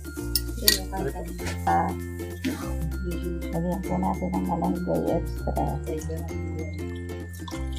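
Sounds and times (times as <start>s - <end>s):
utensil clinking and scraping against a pan while stirring food until dry: 0.2s - 1.8s
speech: 0.6s - 7.6s.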